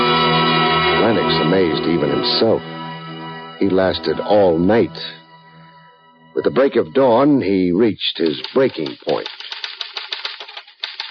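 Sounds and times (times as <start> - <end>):
speech: 1.1 - 2.8, 3.6 - 5.2, 6.4 - 9.5
typewriter keystrokes of a police stenographer typing a confession at headquarters: 8.2 - 11.1.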